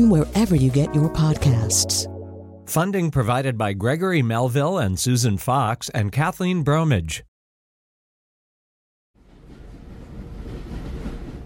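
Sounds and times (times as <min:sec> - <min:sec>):
speech: 0:00.0 - 0:07.3
moving train rumbling, heard from inside the carriage: 0:09.2 - 0:11.4.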